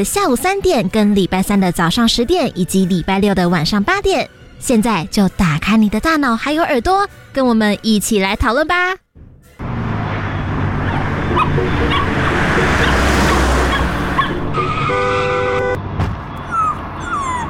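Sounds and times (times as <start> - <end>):
speech: 0.0 - 9.0
car tires screeching as it skids: 9.6 - 17.4
small dog yelping and whimpering after being hit by a car: 10.8 - 12.0, 16.4 - 17.4.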